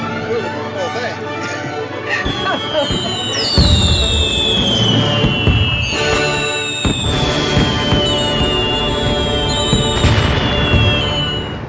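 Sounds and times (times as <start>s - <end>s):
laughter: 0.2s - 4.0s
fireworks display crackling and popping: 2.2s - 11.6s.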